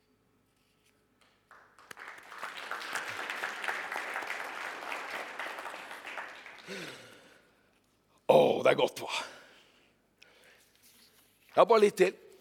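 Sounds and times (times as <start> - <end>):
audience applauding a speaker: 1.5 - 7.4
speech: 8.3 - 9.3, 11.6 - 12.2.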